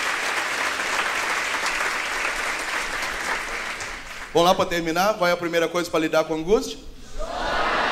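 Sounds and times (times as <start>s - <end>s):
crowd applauding: 0.0s - 4.5s
speech: 4.4s - 6.9s.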